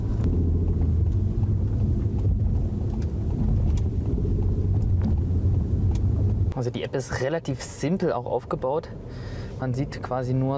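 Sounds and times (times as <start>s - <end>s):
car driving on a city road heard from inside: 0.0s - 10.5s
speech: 6.6s - 10.5s.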